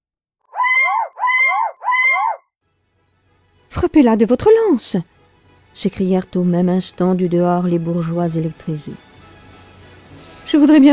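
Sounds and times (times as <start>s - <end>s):
wild loud hoarse screeching cries of a bird: 0.5s - 2.4s
speech: 3.7s - 5.2s, 5.8s - 9.1s, 10.5s - 10.9s.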